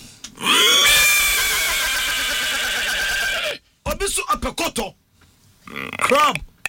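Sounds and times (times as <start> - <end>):
horse neighing: 0.4 - 3.6
speech: 4.5 - 5.0, 5.7 - 6.5.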